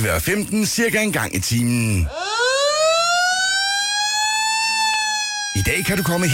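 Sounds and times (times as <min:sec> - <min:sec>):
speech: 0:00.0 - 0:02.4, 0:05.7 - 0:06.3
fire engine siren at the town square in Svendborg: 0:02.1 - 0:06.3.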